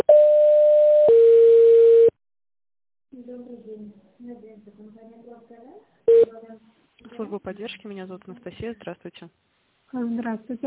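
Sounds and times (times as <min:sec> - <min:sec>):
telephone signalling tone as a call is transferred to an operator: 0:00.0 - 0:02.1, 0:06.1 - 0:06.3
speech: 0:04.2 - 0:10.6.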